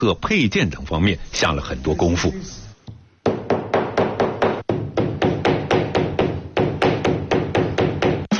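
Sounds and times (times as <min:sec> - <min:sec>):
speech: 0:00.0 - 0:02.6
hammer pounding flowers and leaves to find new colors for bags: 0:03.3 - 0:08.3.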